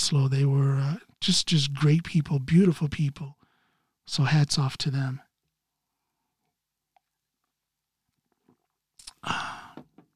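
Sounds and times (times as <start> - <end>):
speech: 0.1 - 3.4, 4.1 - 5.2, 9.2 - 9.5
faint mouth clicks: 9.0 - 9.3.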